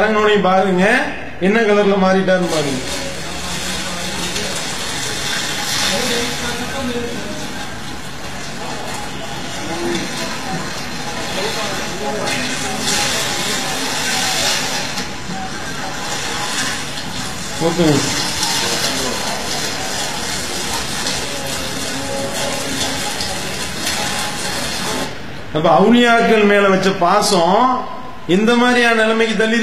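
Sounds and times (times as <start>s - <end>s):
speech: 0.0s - 3.0s, 17.6s - 18.3s, 25.5s - 29.6s
busy murmur of voices: 1.2s - 29.6s
water pouring and splashing over someone being bathed: 2.4s - 25.2s.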